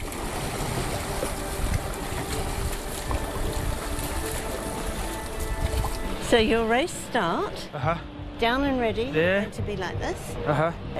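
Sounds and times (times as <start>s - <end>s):
water sloshing and splashing against a dragon boat hull: 0.0s - 6.6s
low rumbling wash of a dragon boat: 0.0s - 9.0s
speech: 6.3s - 10.9s.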